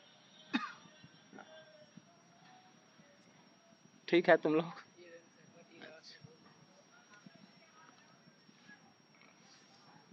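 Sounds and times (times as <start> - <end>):
quiet hissy background: 0.0 - 10.1
sharp cough: 0.5 - 0.8
speech: 4.1 - 4.8.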